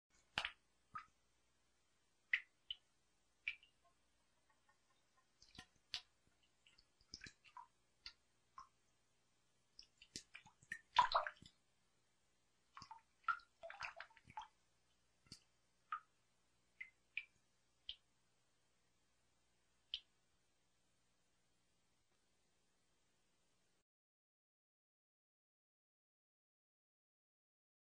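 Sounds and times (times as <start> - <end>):
water dripping from a tap: 0.2 - 1.2, 2.2 - 8.9, 9.7 - 11.6, 12.7 - 18.1, 19.9 - 20.1.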